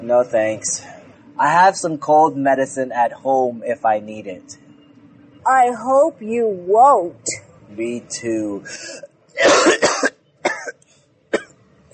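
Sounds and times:
speech: 0.1s - 4.6s, 5.4s - 9.8s
man with a dry throat coughing: 8.7s - 11.5s.

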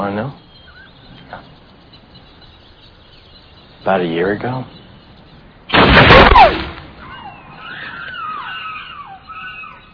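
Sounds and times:
speech: 0.0s - 0.4s, 3.8s - 4.8s
faint wavering high-pitched whistles and squeals: 0.0s - 5.4s, 6.1s - 9.9s
gunshot: 5.7s - 7.0s.

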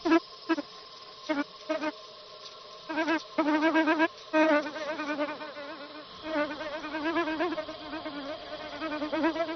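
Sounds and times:
male bee buzzing around a bucket orchid: 1.3s - 1.9s, 2.9s - 9.5s.

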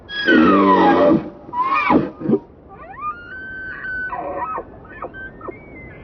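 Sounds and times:
male elk bugling outdoors in Yellowstone: 0.0s - 6.0s.

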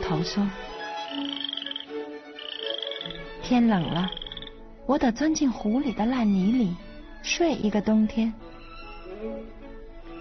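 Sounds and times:
speech: 0.1s - 1.4s, 3.5s - 4.2s, 4.9s - 8.5s
frog croaking: 0.7s - 4.6s
high tonal chirps: 1.0s - 3.1s, 3.8s - 4.6s.

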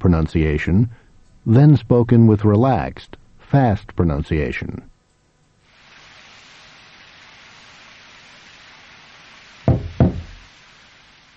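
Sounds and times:
speech: 0.0s - 4.9s
firm knocks on a wooden door: 9.7s - 10.4s.

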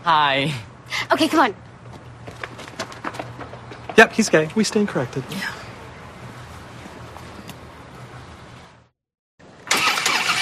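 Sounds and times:
speech: 0.0s - 1.7s, 4.0s - 5.6s
motorcycle engine starting: 9.6s - 10.4s.

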